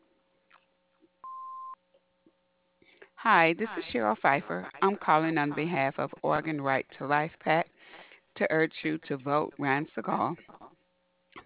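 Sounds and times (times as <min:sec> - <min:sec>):
answering machine beep: 0:01.2 - 0:01.8
speech: 0:03.2 - 0:07.7, 0:08.4 - 0:10.6.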